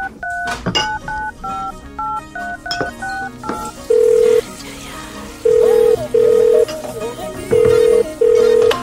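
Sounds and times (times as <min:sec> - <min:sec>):
touch-tone keypad beeps dialing a phone number: 0:00.0 - 0:04.4, 0:05.5 - 0:06.7, 0:07.5 - 0:08.8.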